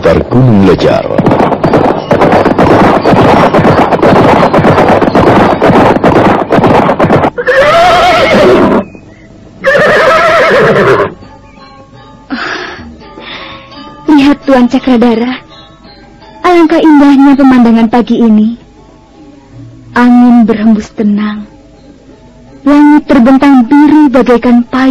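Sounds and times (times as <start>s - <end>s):
horses galloping across a meadow in the morning: 0.0s - 8.8s
speech: 0.1s - 1.4s, 14.6s - 15.4s, 16.6s - 18.6s, 20.0s - 21.5s, 22.6s - 24.8s
horse neighing: 7.4s - 8.8s, 9.6s - 11.2s.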